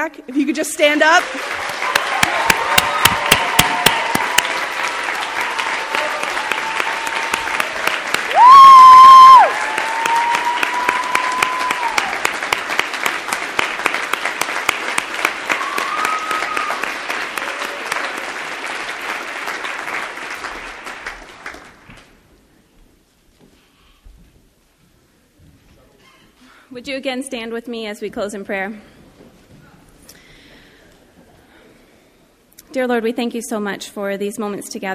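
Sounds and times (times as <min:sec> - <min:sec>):
speech: 0:00.0 - 0:01.8, 0:27.0 - 0:29.0, 0:32.8 - 0:34.9
crowd applauding: 0:00.0 - 0:22.2
whistle or cheer: 0:08.3 - 0:12.0.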